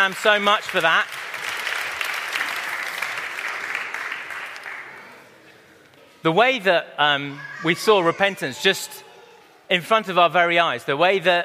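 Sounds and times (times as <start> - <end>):
speech: 0.0 - 1.4, 6.2 - 9.1, 9.7 - 11.4
audience applause for two volunteers: 0.0 - 5.2.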